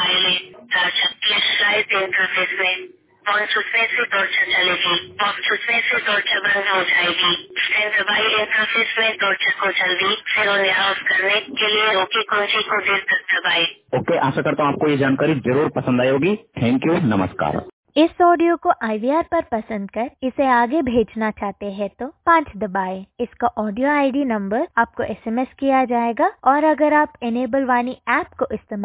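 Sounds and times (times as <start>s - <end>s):
synthetic-sounding voice reading instructions from a phone speaker: 0.0s - 17.7s
speech: 2.1s - 28.8s.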